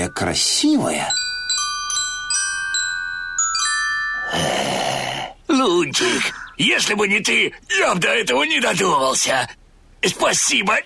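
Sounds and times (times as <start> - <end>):
speech: 0.0 - 1.2, 4.3 - 4.9, 5.6 - 10.8
small bells on spider-web threads ringing a melody: 0.0 - 4.8.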